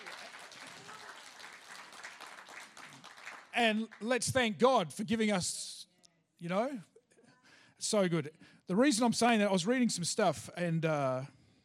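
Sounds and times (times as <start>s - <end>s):
large church audience applauding: 0.0s - 4.4s
speech: 3.6s - 5.7s, 6.4s - 6.9s, 7.8s - 11.4s.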